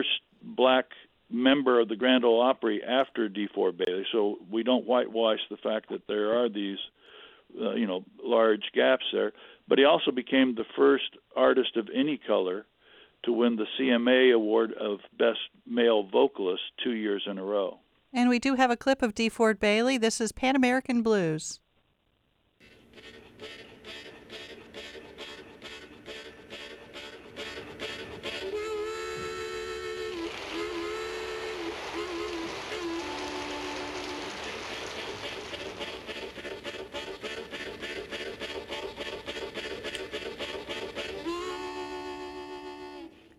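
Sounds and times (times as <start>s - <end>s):
speech: 0.0s - 21.6s
harmonica imitating a train coming down the tracks: 22.7s - 43.3s.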